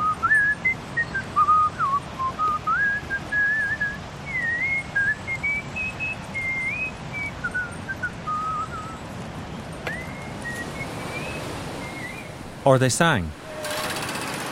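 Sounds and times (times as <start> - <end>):
man whistling a tune outdoors in a park: 0.0 - 9.0, 9.9 - 12.3
speech: 12.7 - 13.4.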